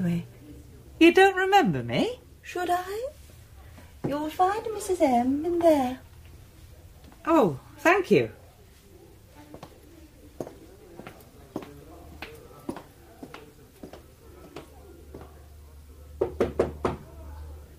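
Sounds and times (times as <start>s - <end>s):
speech: 0.0s - 0.4s, 1.0s - 3.2s, 4.0s - 6.0s, 7.2s - 8.4s
knocking on a wooden door: 16.2s - 17.0s.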